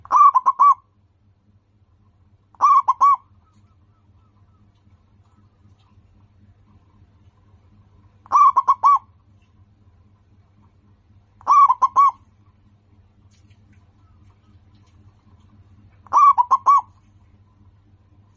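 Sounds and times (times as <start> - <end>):
local-strain zebra dove singing: 0.0 - 0.9, 2.6 - 4.8, 8.2 - 9.1, 11.4 - 12.3, 16.0 - 17.1
quiet low hum: 0.0 - 18.3.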